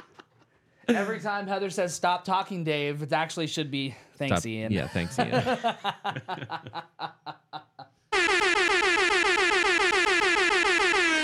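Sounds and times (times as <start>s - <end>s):
speech: 0.9s - 7.4s
short bursts of laughter: 4.8s - 7.9s
loud blaring air horn: 8.1s - 11.2s.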